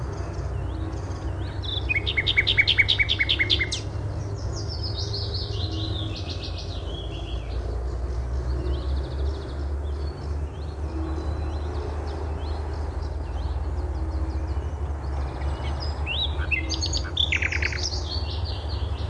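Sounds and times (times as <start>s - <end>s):
bird song with high twittering and sharp notes: 0.1s - 7.8s, 8.5s - 18.9s.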